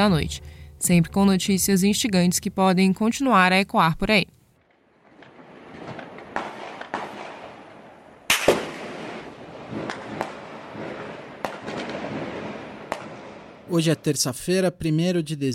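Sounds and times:
speech: 0:00.0 - 0:04.4, 0:13.7 - 0:15.5
gunshots at night recorded on residents' mobile phones in Criciúma: 0:04.7 - 0:13.8.

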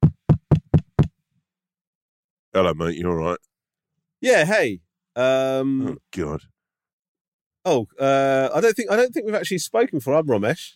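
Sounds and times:
firm knocks on a door: 0:00.0 - 0:01.1
speech: 0:02.6 - 0:03.5, 0:04.2 - 0:06.5, 0:07.6 - 0:10.7.

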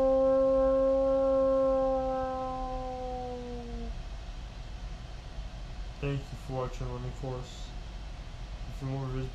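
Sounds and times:
people imitating a long sustained howl: 0:00.0 - 0:04.0
speech: 0:06.0 - 0:07.8, 0:08.8 - 0:09.3.

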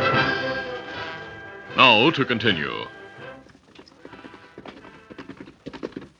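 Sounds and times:
horse hooves clip-clopping as a rider arrives into camp: 0:00.2 - 0:01.7, 0:02.8 - 0:06.1
speech: 0:01.9 - 0:03.0.

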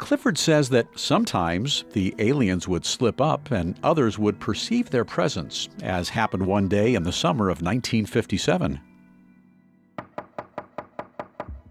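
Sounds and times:
speech: 0:00.1 - 0:08.9
knocking on a garage door: 0:10.0 - 0:11.6.

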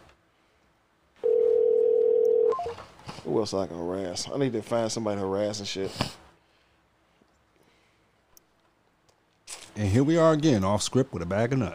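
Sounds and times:
telephone line tone of an unanswered call: 0:01.2 - 0:02.8
speech: 0:03.3 - 0:06.2, 0:09.9 - 0:11.7.

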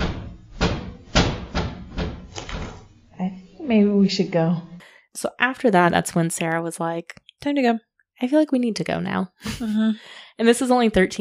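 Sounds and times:
heavy doors slamming: 0:00.0 - 0:02.9
speech: 0:03.3 - 0:11.1.

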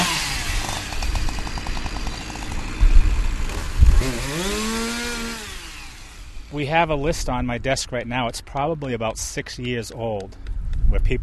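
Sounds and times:
chainsaw cutting trees in municipal tree work in Gardner: 0:00.0 - 0:06.9
speech: 0:06.6 - 0:11.2.

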